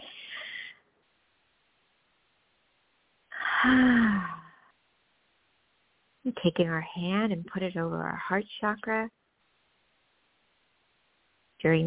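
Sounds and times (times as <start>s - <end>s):
deep breathing during a guided meditation: 0.0s - 0.8s, 3.3s - 4.7s
speech: 3.6s - 4.3s, 6.3s - 9.2s, 11.6s - 11.8s.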